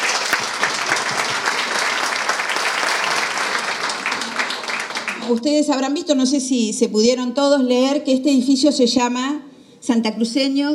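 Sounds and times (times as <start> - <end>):
large audience applauding: 0.0 - 5.3
speech: 5.3 - 10.7.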